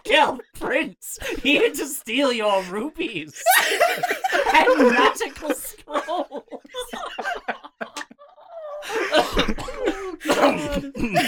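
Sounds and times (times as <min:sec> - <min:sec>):
speech: 0:00.1 - 0:07.1
laughter: 0:03.4 - 0:11.2
throat-clearing coughs: 0:09.1 - 0:11.2.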